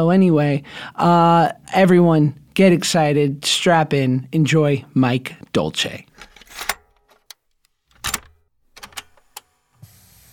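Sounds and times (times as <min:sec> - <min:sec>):
speech: 0:00.0 - 0:06.1
clunks and rattles inside a car: 0:06.2 - 0:09.3.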